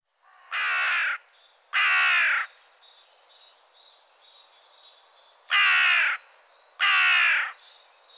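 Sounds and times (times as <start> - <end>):
carrion crow cawing hoarsely like a broken voice: 0.2 - 1.2, 1.8 - 2.5, 5.5 - 6.2, 6.8 - 7.6.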